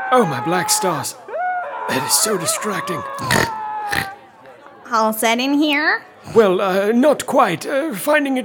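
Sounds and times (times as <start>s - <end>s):
speech: 0.1s - 1.2s, 1.9s - 4.1s, 4.9s - 8.4s
loud sustained scream: 3.1s - 4.1s.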